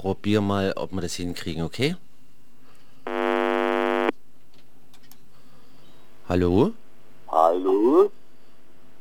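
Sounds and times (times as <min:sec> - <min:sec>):
speech: 0:00.0 - 0:02.1, 0:06.3 - 0:06.8, 0:07.5 - 0:08.2
telephone ringing with a buzzy electronic tone: 0:03.1 - 0:04.1.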